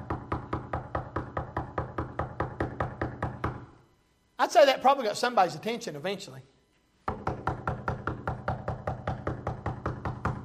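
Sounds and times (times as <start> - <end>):
rapid knocking on a door: 0.0 - 3.7, 7.1 - 10.4
speech: 4.4 - 6.5.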